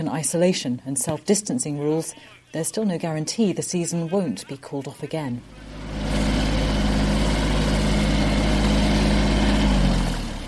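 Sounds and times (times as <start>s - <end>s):
speech: 0.0s - 6.1s
tractor engine puttering back and forth: 5.4s - 10.4s.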